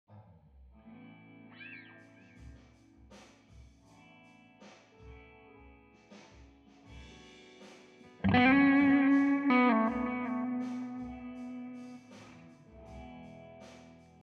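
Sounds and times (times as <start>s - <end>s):
guitar solo: 0.8s - 2.4s, 8.2s - 12.5s
funk fill: 8.2s - 13.0s.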